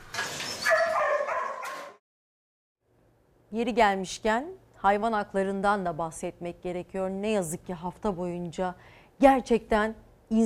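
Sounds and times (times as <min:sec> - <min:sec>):
several dogs barking and yelping at a dog hotel: 0:00.4 - 0:02.0
speech: 0:03.5 - 0:10.4.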